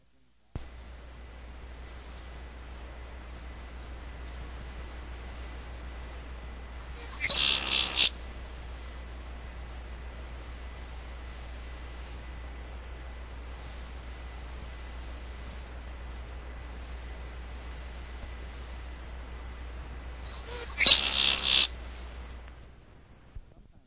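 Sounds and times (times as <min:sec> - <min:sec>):
steady low hiss: 0:00.0 - 0:23.8
red-winged blackbird conkeree song: 0:07.0 - 0:08.2, 0:20.2 - 0:22.8.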